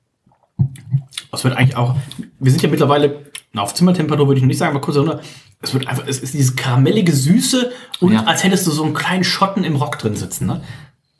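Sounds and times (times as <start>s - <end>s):
person sipping an alcoholic drink: 0.3s - 1.3s, 1.9s - 2.4s
speech: 1.3s - 10.9s.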